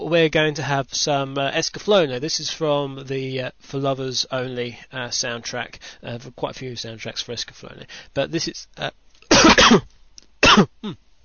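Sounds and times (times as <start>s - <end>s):
speech: 0.1s - 10.0s, 10.6s - 11.0s
harsh coughing from a tickly throat into a microphone: 9.3s - 11.0s.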